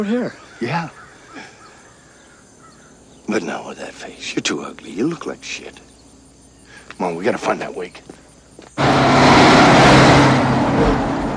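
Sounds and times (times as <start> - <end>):
speech: 0.0 - 1.0, 3.3 - 5.9, 6.9 - 8.2
truck driving past on a road: 8.8 - 11.3.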